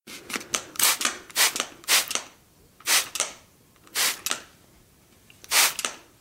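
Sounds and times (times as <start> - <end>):
spray bottle spraying: 0.8 - 2.2, 2.8 - 3.2, 3.9 - 4.4, 5.5 - 6.0.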